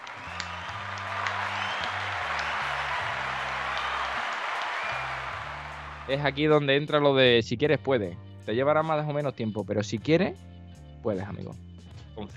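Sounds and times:
applause with many hands clapping: 0:00.0 - 0:06.6
speech: 0:06.1 - 0:12.3.

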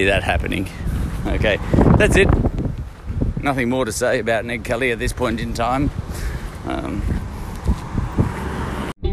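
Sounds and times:
speech: 0:00.0 - 0:02.6, 0:03.4 - 0:07.2
loud wind buffeting the microphone outdoors on a hot day: 0:00.0 - 0:08.9
traffic rumbling past: 0:06.0 - 0:09.0.

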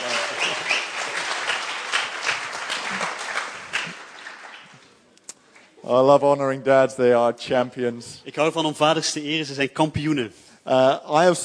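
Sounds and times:
audience applauding with dense overlapping claps: 0:00.0 - 0:05.7
speech: 0:05.9 - 0:11.4.

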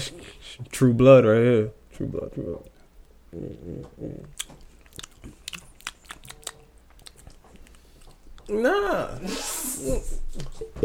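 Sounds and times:
speech: 0:00.0 - 0:02.7, 0:03.3 - 0:04.6, 0:08.5 - 0:10.8
low hum or murmur: 0:00.0 - 0:10.8
tongue clicks: 0:04.2 - 0:07.8
wet lip smacks of someone tasting a drink: 0:04.2 - 0:08.5.

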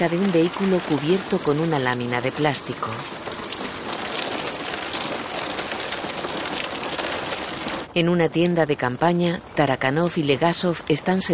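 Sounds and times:
speech: 0:00.0 - 0:03.2, 0:08.0 - 0:11.3
steady rain pouring down at night: 0:00.0 - 0:07.9.

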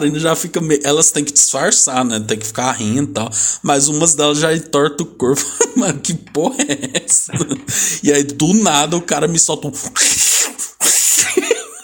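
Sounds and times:
speech: 0:00.0 - 0:10.3
laughter: 0:05.3 - 0:07.9, 0:10.9 - 0:11.8
man on stage mimicking a screaming cat: 0:09.9 - 0:11.3.

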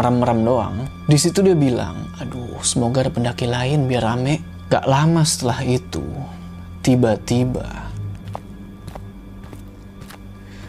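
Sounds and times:
speech: 0:00.0 - 0:07.8
slow soft footsteps approaching: 0:08.1 - 0:10.6.

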